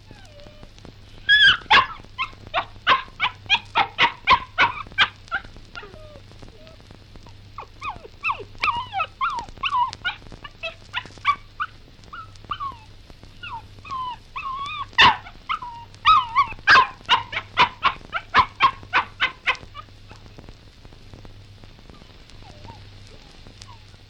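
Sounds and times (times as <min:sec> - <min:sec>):
puppy whining: 0:00.0 - 0:20.3, 0:21.9 - 0:24.0
puppy barking: 0:01.3 - 0:06.7, 0:07.6 - 0:20.3.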